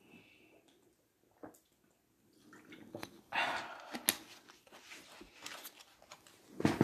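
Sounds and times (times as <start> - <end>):
person gulping alkaline water: 0.7 - 4.0
soft swallowing and sloshing: 0.7 - 4.2.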